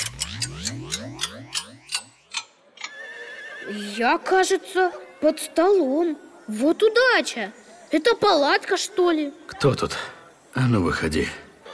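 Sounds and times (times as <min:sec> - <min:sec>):
warbling downward-sliding tonal whoosh: 0:00.0 - 0:02.4
antique clock ticking: 0:00.0 - 0:02.6
speech: 0:03.7 - 0:11.4.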